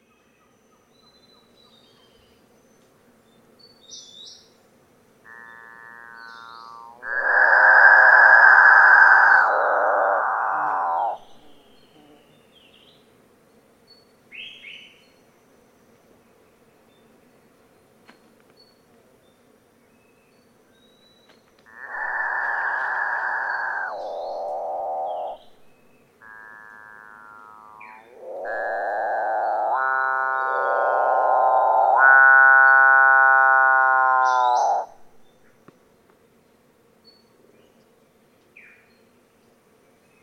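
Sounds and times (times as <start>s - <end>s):
capuchinbird calling: 5.3s - 11.9s, 21.7s - 25.6s, 26.2s - 35.1s.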